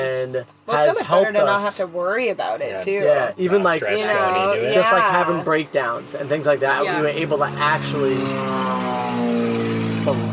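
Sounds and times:
speech: 0:00.0 - 0:08.7
low-flying propeller plane droning overhead: 0:07.0 - 0:10.3.

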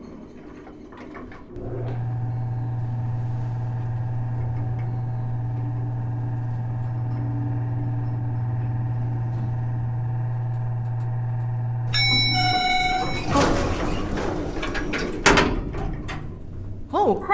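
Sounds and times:
clunks and rattles: 0:00.0 - 0:16.9
elevator doors sliding open one floor above: 0:00.0 - 0:16.9
steady mechanical hum: 0:00.0 - 0:17.3
bright elevator chime: 0:01.6 - 0:15.2.

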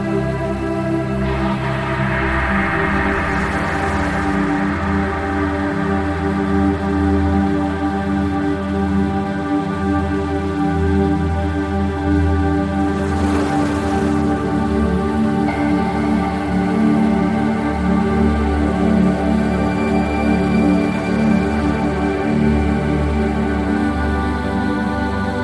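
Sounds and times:
soft sustained sleep music of layered held tones: 0:00.0 - 0:25.4
ocean waves washing: 0:00.5 - 0:08.4, 0:12.0 - 0:17.6.

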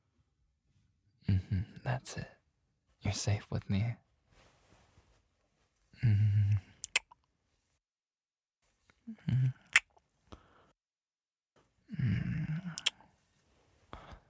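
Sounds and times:
speech: 0:01.4 - 0:02.4, 0:03.0 - 0:04.0, 0:06.0 - 0:06.6, 0:09.1 - 0:09.6
soft kisses on the neck: 0:06.8 - 0:07.2, 0:12.7 - 0:13.0.

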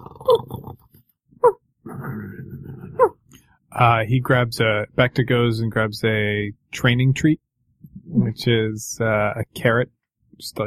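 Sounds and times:
dog whimpering in its sleep: 0:02.9 - 0:03.2
speech: 0:03.8 - 0:07.4, 0:08.3 - 0:10.6.

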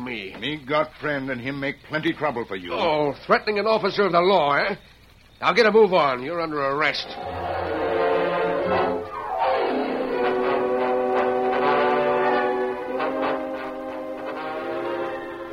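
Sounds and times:
speech: 0:00.1 - 0:07.4
sustained train whistle: 0:07.0 - 0:15.5.

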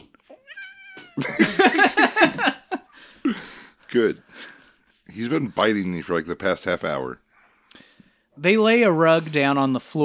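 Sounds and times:
upset male cat yowling: 0:00.3 - 0:01.2
laughter: 0:01.2 - 0:03.6
speech: 0:03.9 - 0:04.5, 0:05.2 - 0:07.2, 0:08.4 - 0:10.0.

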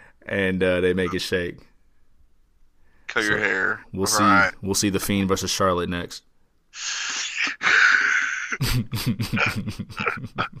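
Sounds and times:
speech: 0:00.2 - 0:01.7, 0:03.1 - 0:07.6, 0:08.5 - 0:10.5
person yawning: 0:06.8 - 0:08.6
laughter: 0:07.5 - 0:10.5.

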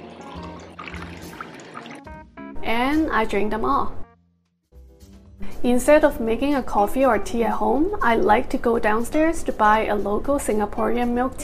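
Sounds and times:
water pouring into a jar: 0:00.0 - 0:02.1
speech: 0:02.6 - 0:04.0, 0:05.6 - 0:11.4.

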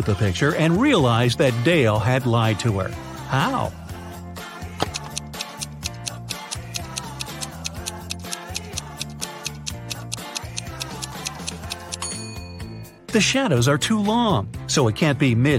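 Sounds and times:
speech: 0:00.0 - 0:03.8, 0:13.2 - 0:15.5
bouncy music bed with stepping bass notes: 0:04.5 - 0:12.0
crisp clock ticking like a countdown timer: 0:04.9 - 0:12.1.

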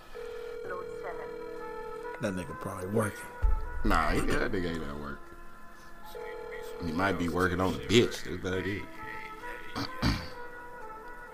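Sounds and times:
phone ringing on speakerphone: 0:00.0 - 0:02.6, 0:06.1 - 0:08.3
speech: 0:00.7 - 0:05.3, 0:06.1 - 0:09.0, 0:09.8 - 0:10.1.

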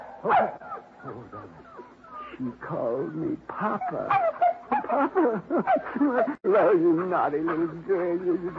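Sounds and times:
newborn puppies yelping and whimpering: 0:00.5 - 0:02.4, 0:03.0 - 0:05.9, 0:07.0 - 0:08.5
speech: 0:02.4 - 0:08.5
laughter: 0:03.9 - 0:08.5.

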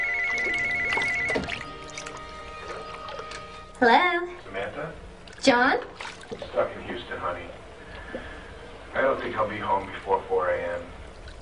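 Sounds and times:
cordless telephone ringing in a bathroom: 0:00.0 - 0:01.8
running water or splashing in a bathtub: 0:00.0 - 0:03.8, 0:05.2 - 0:11.3
speech: 0:03.8 - 0:08.3, 0:09.0 - 0:10.9.

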